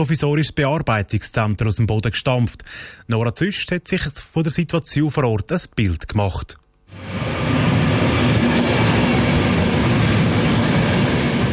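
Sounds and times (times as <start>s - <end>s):
speech: 0.0s - 7.7s
train arriving at a station: 6.9s - 11.5s
faint high squeal from train wheels: 7.5s - 11.5s.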